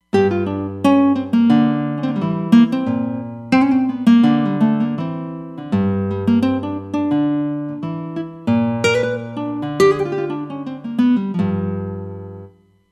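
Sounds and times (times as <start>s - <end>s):
nylon guitar on a Roland Fantom XR: 0.0s - 12.6s.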